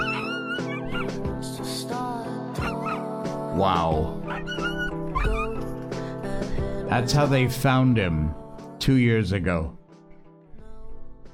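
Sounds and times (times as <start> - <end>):
abandoned dog whimpering and yipping: 0.0 - 1.2, 2.6 - 3.1, 4.2 - 5.8
music: 0.0 - 11.3
speech: 3.6 - 4.3, 6.9 - 9.8.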